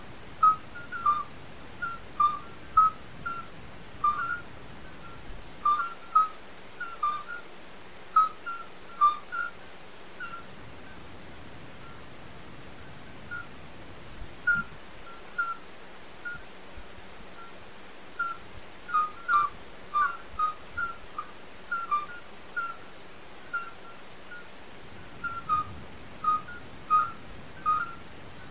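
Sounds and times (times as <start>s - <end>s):
midwife toads calling: 0.4s - 7.5s, 8.1s - 11.0s, 13.3s - 13.6s, 14.5s - 16.5s, 17.4s - 28.4s.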